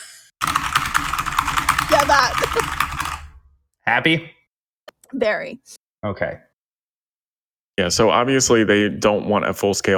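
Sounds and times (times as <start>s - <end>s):
typing on a mechanical keyboard: 0.4s - 3.4s
speech: 2.1s - 2.8s, 3.9s - 4.4s, 5.1s - 6.5s, 7.8s - 9.9s.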